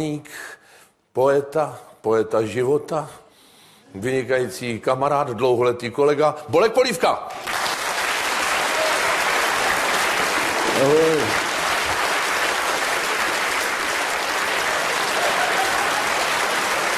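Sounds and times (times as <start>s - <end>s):
speech: 0.0s - 0.6s, 1.2s - 3.2s, 3.9s - 7.6s, 10.8s - 11.4s
dense audience applause: 7.3s - 16.9s.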